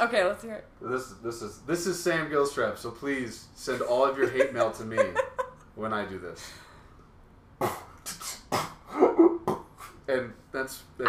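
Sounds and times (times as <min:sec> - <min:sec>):
speech: 0:00.0 - 0:06.6, 0:07.6 - 0:07.9, 0:10.1 - 0:11.0
laughter: 0:04.1 - 0:05.6
person choking and coughing while holding back laughter: 0:07.6 - 0:10.0.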